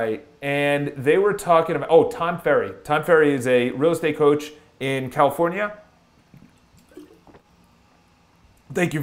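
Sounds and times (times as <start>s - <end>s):
speech: 0.0s - 5.8s, 8.7s - 9.0s
swallowing and gurgling sip of water: 6.3s - 7.4s.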